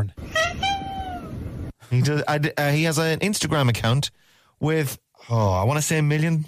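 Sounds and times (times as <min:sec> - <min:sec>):
little ginger tabby cat meowing: 0:00.2 - 0:01.4
speech: 0:01.9 - 0:06.4.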